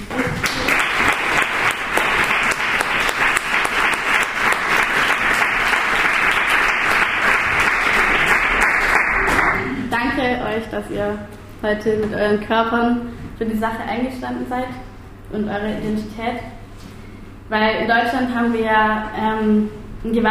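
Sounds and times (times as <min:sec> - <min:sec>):
audience applauding: 0:00.0 - 0:09.8
speech: 0:10.7 - 0:16.6, 0:17.5 - 0:20.2.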